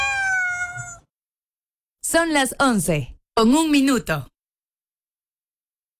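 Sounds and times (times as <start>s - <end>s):
cat meowing: 0.0s - 1.1s
speech: 2.1s - 4.3s.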